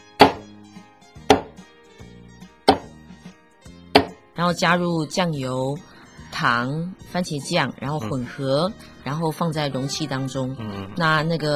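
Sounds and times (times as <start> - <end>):
garlic cloves being crushed flat with dull thumps: 0.0 - 0.6, 1.2 - 1.7, 2.7 - 3.0, 3.9 - 4.2
speech: 4.4 - 11.5.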